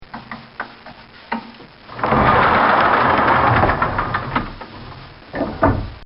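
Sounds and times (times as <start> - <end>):
sliding stall door closing: 1.9 - 6.0.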